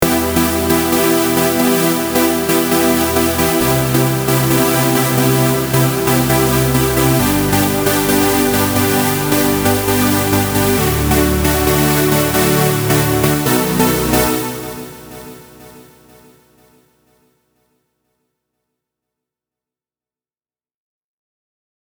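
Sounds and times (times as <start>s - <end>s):
supersaw synth: 0.0s - 16.6s.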